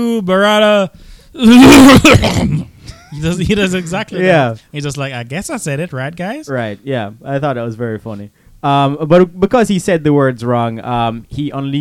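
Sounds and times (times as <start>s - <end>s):
speech: 0.0s - 11.8s
vocal imitation of a cough masking a spoken word: 1.5s - 3.1s.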